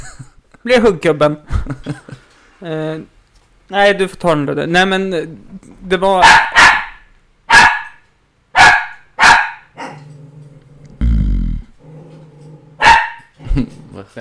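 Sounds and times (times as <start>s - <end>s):
speech: 0.6s - 6.5s
laughter: 1.5s - 2.3s
dog barking: 6.2s - 10.1s, 12.8s - 13.3s
dog growling and snarling: 9.8s - 12.8s.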